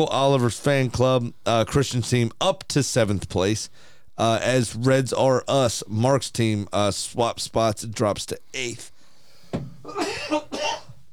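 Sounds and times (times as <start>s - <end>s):
speech: 0.0s - 8.9s
raspy harsh hacking cough: 9.8s - 11.0s.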